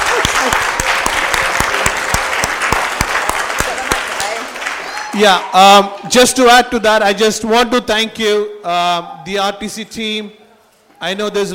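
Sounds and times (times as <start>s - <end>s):
audience applauding at a service: 0.0s - 6.1s
speech: 5.2s - 10.4s, 11.0s - 11.5s.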